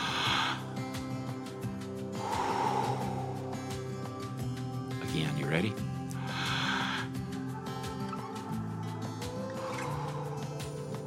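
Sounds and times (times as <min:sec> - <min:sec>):
slow deep breathing in and out during breathing exercise: 0:00.0 - 0:05.0, 0:06.1 - 0:07.8, 0:09.3 - 0:11.0
soft sustained music: 0:00.0 - 0:11.0
speech: 0:05.5 - 0:05.9.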